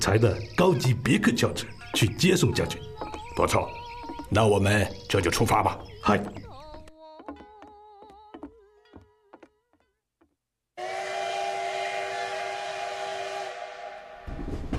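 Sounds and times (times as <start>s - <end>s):
speech: 0.0s - 6.5s
steam train whistle at a railway station: 10.8s - 14.3s.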